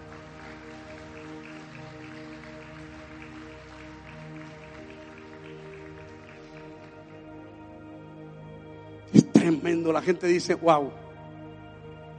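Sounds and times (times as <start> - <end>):
crowd applauding: 0.0 - 7.6
soft sustained music: 0.0 - 12.1
speech: 9.1 - 11.0.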